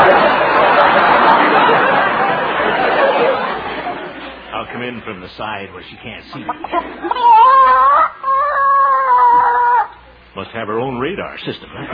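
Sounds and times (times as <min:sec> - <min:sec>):
laughter: 0:00.0 - 0:04.9, 0:05.8 - 0:10.0, 0:11.7 - 0:11.9
speech: 0:05.4 - 0:08.0, 0:10.4 - 0:11.9
hen squawking as her egg is collected: 0:06.5 - 0:10.0.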